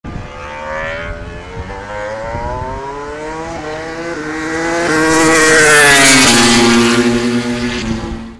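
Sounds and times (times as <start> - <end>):
racing engines: 0.0 - 8.3.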